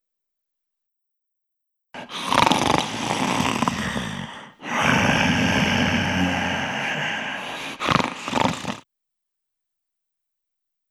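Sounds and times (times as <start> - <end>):
person snoring: 2.0 - 8.8.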